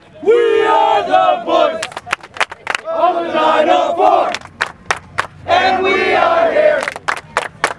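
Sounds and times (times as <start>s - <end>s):
crowd chanting: 0.1s - 4.6s, 5.4s - 7.0s.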